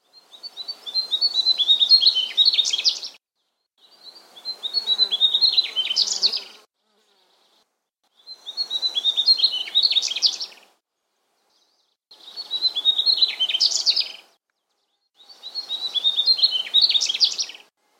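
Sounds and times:
sikatan gunung bird song: 0.0s - 17.7s.

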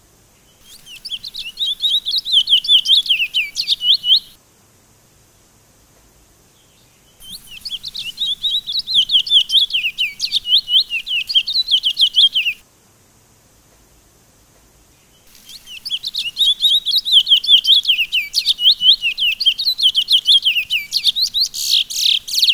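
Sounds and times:
Sunda laughingthrush song of quick high-pitched slurred chirps: 0.6s - 4.4s, 7.2s - 12.6s, 15.3s - 22.5s.

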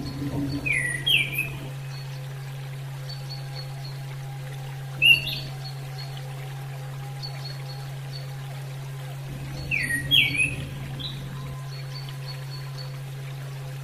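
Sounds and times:
female orange-headed thrush whistling: 0.0s - 2.2s, 9.2s - 13.2s
low steady hum: 0.0s - 13.8s.

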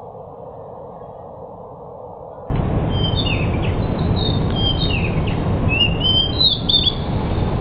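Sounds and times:
pied bush chat chirping and whistling: 2.9s - 7.2s.

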